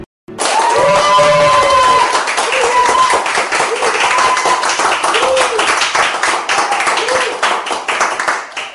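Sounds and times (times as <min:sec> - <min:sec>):
dense applause: 0:00.3 - 0:08.7
small group of women cheering and whooping: 0:00.4 - 0:05.7.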